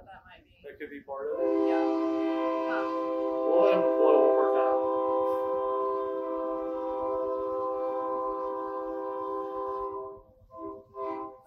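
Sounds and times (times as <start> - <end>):
speech: 0.6 - 2.1
brief sounds: 1.1 - 7.1
loud sustained train horn blaring: 1.2 - 11.4
rumble and clatter of a passing train: 1.3 - 10.1.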